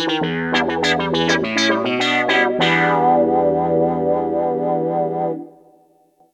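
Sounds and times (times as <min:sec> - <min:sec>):
Roland JX-1 factory preset sweep: 0:00.2 - 0:05.5.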